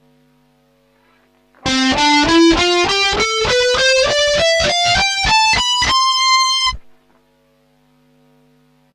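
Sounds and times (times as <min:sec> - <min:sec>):
guitar with chorus effect: 0:01.0 - 0:07.6.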